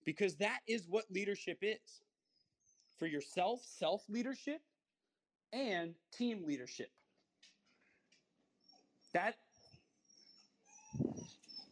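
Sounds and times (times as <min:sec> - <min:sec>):
speech: 0:00.0 - 0:02.1, 0:03.0 - 0:04.7, 0:05.5 - 0:07.0, 0:09.1 - 0:09.4
10-week-old puppy crying in its cage: 0:08.6 - 0:11.7.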